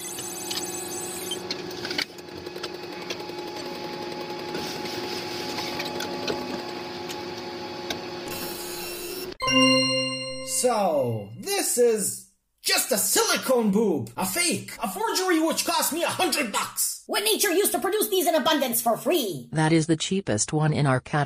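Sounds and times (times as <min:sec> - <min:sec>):
3D printer whirring and buzzing while printing an object: 0:00.0 - 0:09.3
speech: 0:10.7 - 0:21.2.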